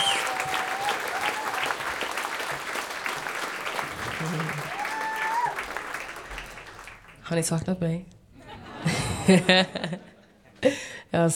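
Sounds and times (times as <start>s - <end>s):
whistles: 0.0s - 1.6s
cheers: 0.0s - 7.0s
audience applause: 0.0s - 7.3s
speech: 7.3s - 8.2s, 8.8s - 10.1s, 10.7s - 11.3s
laughter: 8.4s - 10.6s.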